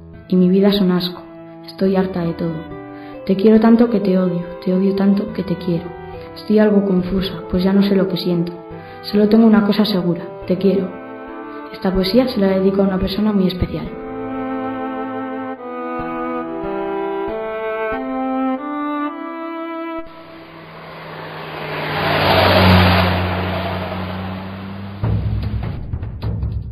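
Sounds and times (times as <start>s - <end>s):
speech: 0.3s - 11.0s, 11.7s - 14.0s
brief tuneful melody: 0.8s - 24.6s
racing car engine revving: 20.0s - 25.5s.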